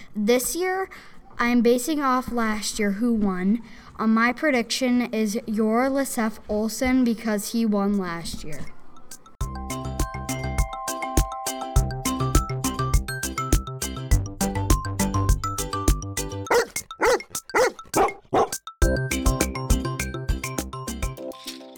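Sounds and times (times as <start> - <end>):
speech: 0.2 - 8.8
steady rhythmic music: 9.0 - 21.7
sled dogs from a long-distance sled race barking: 16.5 - 18.6.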